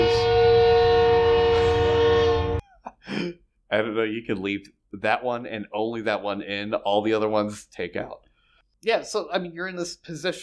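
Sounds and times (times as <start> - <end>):
train horn blaring: 0.0 - 2.6
speech: 3.7 - 8.2, 8.8 - 10.4.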